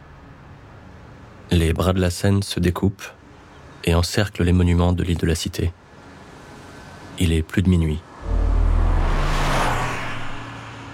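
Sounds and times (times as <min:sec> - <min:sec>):
speech: 0:01.5 - 0:03.2, 0:03.8 - 0:05.8, 0:07.2 - 0:08.1
car engine roaring while speeding past: 0:08.2 - 0:10.9.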